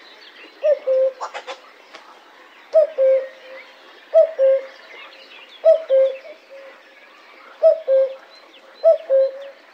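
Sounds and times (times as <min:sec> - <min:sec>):
faint birdsong: 0:00.0 - 0:09.7
common cuckoo calling: 0:00.6 - 0:01.6, 0:02.7 - 0:04.8, 0:05.6 - 0:06.7, 0:08.8 - 0:09.6.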